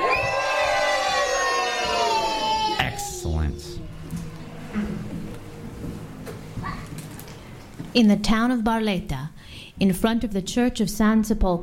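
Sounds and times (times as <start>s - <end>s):
audience screaming and shrieking with joy: 0.0s - 3.9s
speech: 7.9s - 11.6s.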